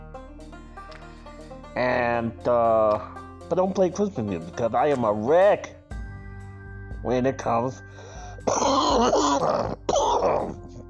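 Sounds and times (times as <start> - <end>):
speech: 1.8 - 5.8, 7.0 - 10.6
man coughing from allergies: 8.4 - 10.6
man clearing his throat from allergies: 8.4 - 10.7.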